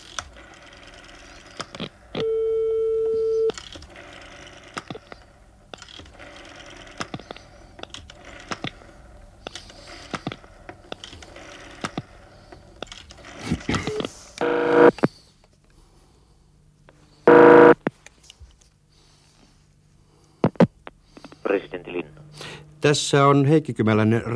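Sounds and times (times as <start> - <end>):
telephone tones: 2.1 - 3.6, 13.8 - 15.0, 17.3 - 17.9
speech: 22.9 - 24.3.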